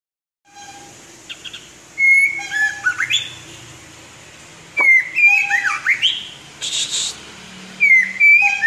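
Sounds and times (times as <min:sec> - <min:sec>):
white-rumped shama singing whistled phrases: 0:01.3 - 0:03.4, 0:04.8 - 0:06.9, 0:07.8 - 0:08.6.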